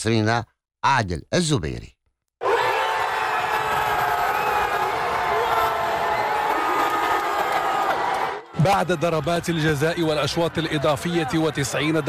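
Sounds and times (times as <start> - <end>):
speech: 0.0 - 2.0, 8.6 - 12.0
large crowd of football fans cheering in celebration: 2.4 - 12.0.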